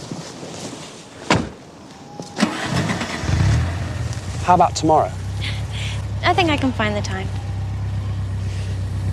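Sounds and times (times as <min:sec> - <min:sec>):
car engine starting: 0:02.4 - 0:09.1
speech: 0:04.5 - 0:05.2, 0:06.3 - 0:07.4.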